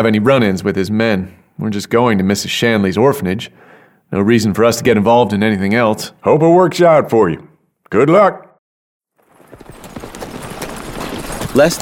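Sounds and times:
speech: 0.0 - 8.4, 11.6 - 11.7
horse hooves on a trail: 9.2 - 11.7
buckboard wagon setting off on a trail: 9.4 - 11.7.

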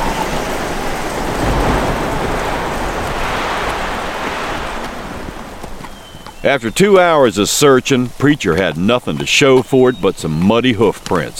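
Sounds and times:
deep rumbling low end beneath rain: 0.0 - 6.8
heavy rain pouring: 0.0 - 11.3
speech: 6.4 - 11.3.

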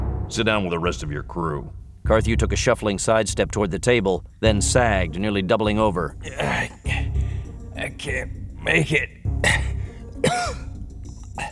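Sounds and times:
low steady background: 0.0 - 11.5
speech: 0.3 - 7.2, 7.8 - 10.6
man coughing up pink foam: 6.2 - 7.3, 9.4 - 11.5.

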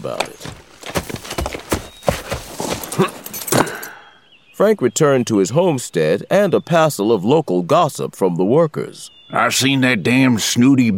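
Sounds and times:
speech: 0.0 - 0.5, 3.0 - 3.2, 4.6 - 10.9
horse hooves clip-clopping at a walking pace: 0.0 - 3.9.

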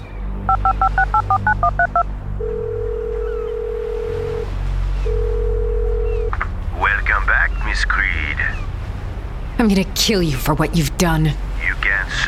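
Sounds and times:
low rumbling background: 0.0 - 12.2
speech: 0.5 - 1.4, 9.6 - 11.4
electronic phone keypad tones: 0.5 - 3.7.

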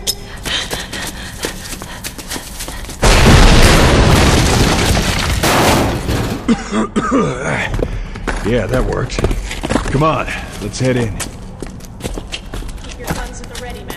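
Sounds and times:
grenades exploding after their pins are pulled: 3.0 - 6.5
speech: 6.5 - 7.8, 8.4 - 11.4.

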